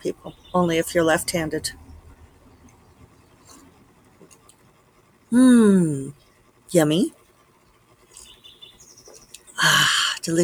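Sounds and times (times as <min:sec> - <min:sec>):
speech: 0:00.0 - 0:01.8, 0:05.3 - 0:07.2, 0:09.6 - 0:10.4
soft steady outdoor noise: 0:00.0 - 0:10.4
birds singing outdoors in the morning: 0:00.1 - 0:00.8, 0:08.1 - 0:09.8.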